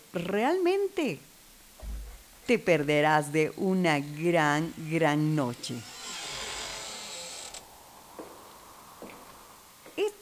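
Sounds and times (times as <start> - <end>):
speech: 0.1 - 1.3, 2.5 - 5.9
soft sparse thuds: 1.7 - 2.5, 8.1 - 10.0
door creaking open at a song intro: 4.0 - 8.3.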